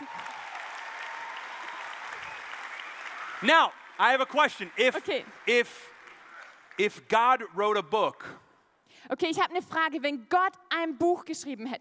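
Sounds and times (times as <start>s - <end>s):
audience applause: 0.0s - 7.5s
speech: 3.4s - 5.9s, 6.8s - 8.4s, 9.0s - 11.7s.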